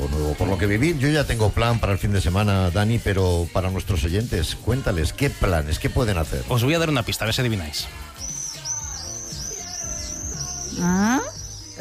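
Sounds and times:
speech: 0.3 - 8.0, 10.8 - 11.7
common swifts screaming in a shrill chorus: 6.4 - 11.7.

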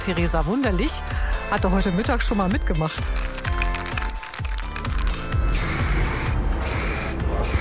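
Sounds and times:
speech: 0.0 - 3.4
spray paint can rattling shakes: 2.7 - 5.3
graffiti artist's spray paint can hissing onto a wall in Cottbus: 3.0 - 7.5.

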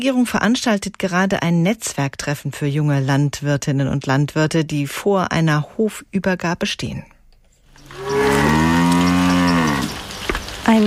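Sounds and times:
speech: 0.0 - 7.1
cow mooing while being driven to pasture: 7.9 - 10.0.

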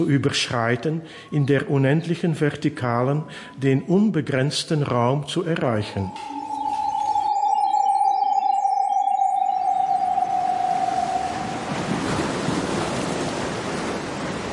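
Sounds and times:
speech: 0.0 - 6.4
sustained high tone: 5.6 - 13.0
sea waves washing onto a beach: 11.7 - 14.5.

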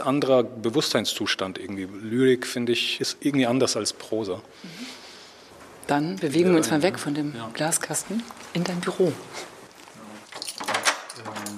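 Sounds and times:
speech: 0.0 - 5.0, 5.9 - 9.5
faint voice murmuring: 10.0 - 10.3
door swinging and shutting: 10.4 - 11.5.

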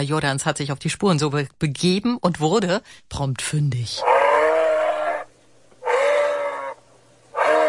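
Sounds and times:
speech: 0.0 - 4.2
moose calling in Grünheide, Brandenburg, Germany: 4.0 - 7.6.

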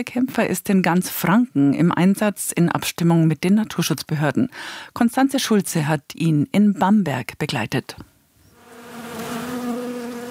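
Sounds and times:
speech: 0.0 - 8.1
ground wasps buzzing at an underground nest beneath a lawn at a swimming pool: 8.5 - 10.2.

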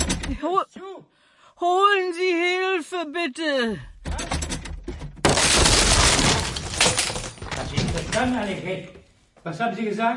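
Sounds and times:
speech: 0.3 - 3.9, 7.6 - 10.1
wood splintering and debris clattering: 4.0 - 9.0
door crashing open from being kicked in: 4.1 - 8.6.

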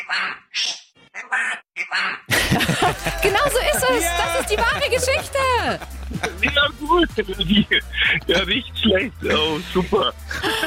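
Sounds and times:
parrot squawking harshly: 0.0 - 2.3
speech: 0.1 - 10.6
laughter: 2.3 - 10.6.

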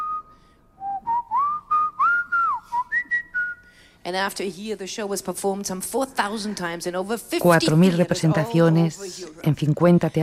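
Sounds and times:
person whistling an opera tune: 0.0 - 3.7
speech: 4.0 - 10.2.

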